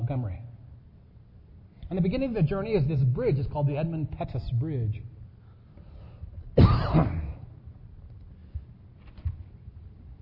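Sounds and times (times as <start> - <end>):
speech: 0.1 - 0.4, 1.9 - 5.1, 6.6 - 7.2
person clearing throat: 6.6 - 7.6.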